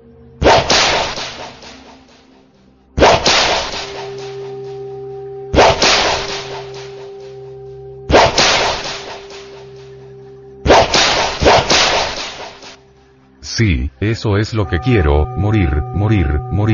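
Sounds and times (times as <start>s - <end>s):
whip lashes cracking: 0.4s - 2.3s, 3.0s - 4.6s, 5.6s - 7.3s, 8.1s - 9.6s, 10.7s - 12.8s
speech: 13.6s - 16.7s.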